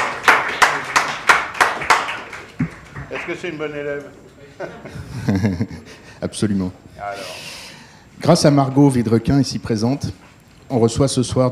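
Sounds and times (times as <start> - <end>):
audience clapping in a lecture hall to welcome a guest: 0.0 - 4.1
speech: 3.3 - 7.5, 8.2 - 11.5
laughter: 4.3 - 6.3.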